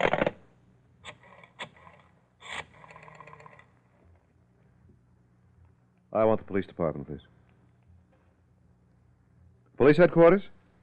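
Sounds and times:
rotary telephone being dialed to call the police: 1.1 - 3.7
speech: 6.2 - 7.4, 9.8 - 10.6.

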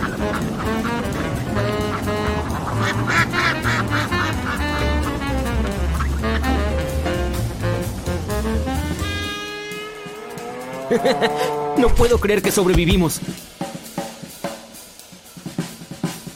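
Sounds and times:
ducks quacking: 0.0 - 10.0
speech: 0.2 - 4.0, 10.9 - 13.5
laughter: 10.9 - 11.7.

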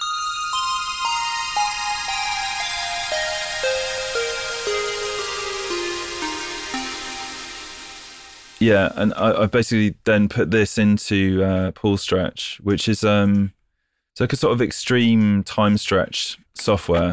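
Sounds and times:
bright buzzy square-wave synth with shimmer reverb: 0.0 - 9.4
speech: 8.6 - 13.6, 14.2 - 17.1.

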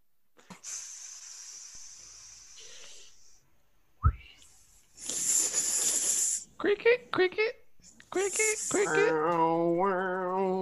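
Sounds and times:
long breathy hisses: 0.4 - 3.5, 4.3 - 6.6
voiced speech-like sounds: 6.6 - 10.6.

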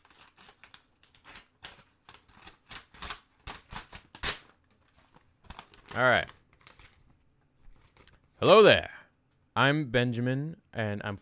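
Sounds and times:
fan mail envelope being opened, paper crinkling and tearing: 0.0 - 4.6, 5.4 - 7.0
speech: 6.0 - 6.4, 8.4 - 8.9, 9.6 - 11.2.

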